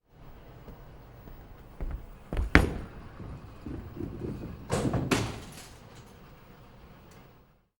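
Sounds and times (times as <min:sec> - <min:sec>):
bowling gutter ball: 0:00.6 - 0:05.9.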